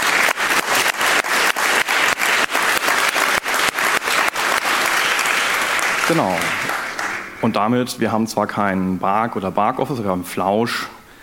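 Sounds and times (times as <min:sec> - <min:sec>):
crowd at an event clapping for volunteers: 0:00.0 - 0:07.4
speech: 0:06.1 - 0:06.7, 0:07.4 - 0:11.0.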